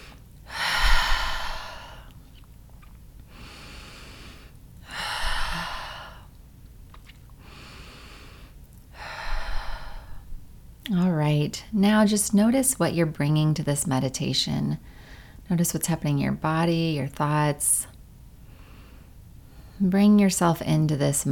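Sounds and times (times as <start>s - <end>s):
slow deep breathing in through the nose and out through the mouth: 0.0s - 2.2s, 3.3s - 6.3s, 7.4s - 10.4s
speech: 11.4s - 17.9s, 19.8s - 21.2s.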